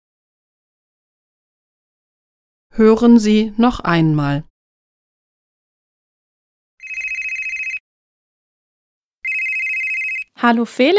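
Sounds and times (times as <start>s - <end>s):
speech: 2.7s - 4.5s, 10.4s - 10.9s
telephone ringing with bright trilling electronic ring: 6.8s - 7.8s, 9.2s - 10.4s.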